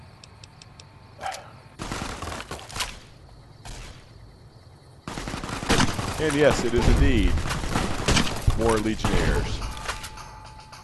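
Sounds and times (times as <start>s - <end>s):
big gun firing bursts in a video game: 1.8s - 2.5s, 5.0s - 9.7s
speech: 6.2s - 7.5s, 8.6s - 9.6s.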